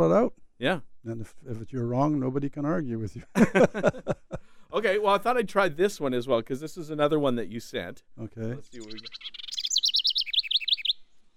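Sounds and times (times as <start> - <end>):
speech: 0.0 - 9.4
laughter: 3.2 - 4.5
house wren singing: 8.6 - 11.3.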